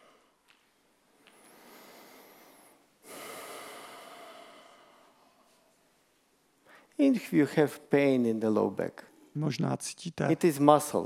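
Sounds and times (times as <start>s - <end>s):
person breathing in and out during a back-muscle exercise: 1.2s - 5.8s
speech: 7.0s - 11.0s.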